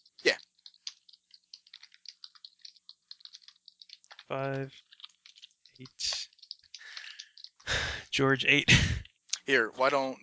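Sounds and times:
rapid typing on a computer keyboard: 0.0s - 7.8s
speech: 4.3s - 4.9s, 5.8s - 6.1s, 8.2s - 10.2s.

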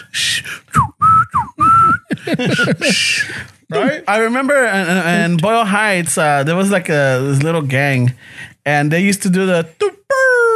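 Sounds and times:
loud human whistle as a street calling signal: 0.2s - 2.2s
speech: 0.4s - 0.8s, 2.3s - 10.2s
laughter: 1.9s - 4.1s.

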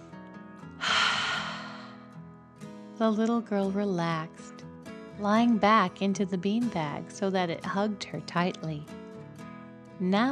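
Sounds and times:
deep slow breath in and out: 0.8s - 2.1s
speech: 3.0s - 4.6s, 5.2s - 9.0s, 10.0s - 10.3s.

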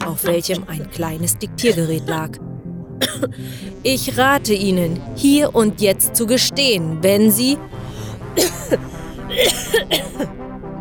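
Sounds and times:
speech: 0.1s - 7.8s, 8.4s - 10.4s
person coughing with hacking coughs: 3.0s - 3.8s, 8.0s - 10.3s.

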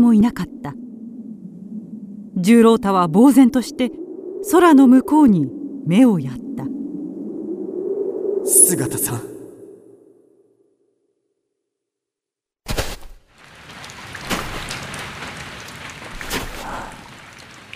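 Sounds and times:
speech: 0.0s - 0.8s, 2.4s - 6.7s, 8.7s - 9.3s
rain: 12.7s - 17.7s.

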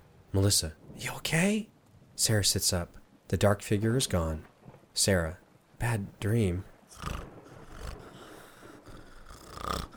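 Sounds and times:
speech: 0.3s - 7.2s
person snoring heavily during deep sleep: 6.9s - 9.9s.

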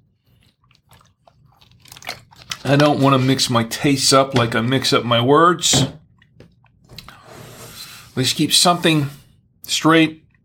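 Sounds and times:
food crunching and chewing to clear the palate: 0.0s - 3.4s, 6.0s - 7.1s
speech: 2.7s - 6.0s, 8.2s - 10.2s.

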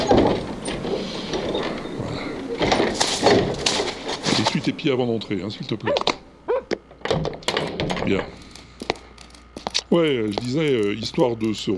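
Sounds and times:
door sliding open with a scrape: 0.0s - 8.4s
steady mechanical rumble and rustle: 0.0s - 11.7s
speech: 4.6s - 6.2s, 8.1s - 8.4s, 9.9s - 11.7s.

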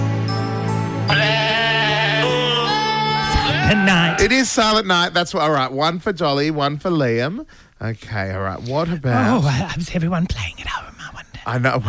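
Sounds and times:
goats bleating a slow carol-like melody: 1.1s - 4.3s
speech: 3.7s - 11.8s.

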